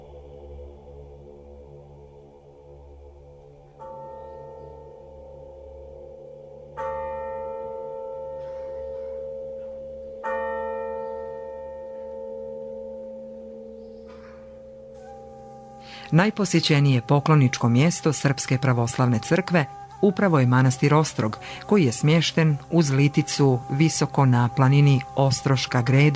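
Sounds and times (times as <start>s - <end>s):
church bell tolling from a tower: 6.6s - 26.1s
speech: 16.1s - 26.1s.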